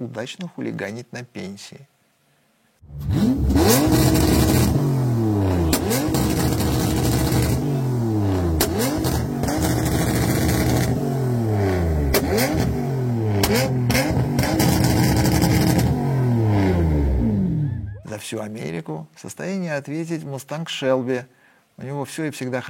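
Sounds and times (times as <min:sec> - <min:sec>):
speech: 0:00.0 - 0:02.0, 0:02.9 - 0:04.0, 0:18.3 - 0:22.6
BMW E34 engine revving hard: 0:02.8 - 0:17.6.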